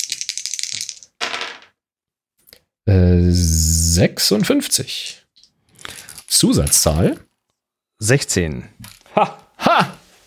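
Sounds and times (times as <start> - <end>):
dice rattling and clattering: 0.0 - 1.8
speech: 2.9 - 5.2, 6.4 - 7.3, 8.0 - 9.9.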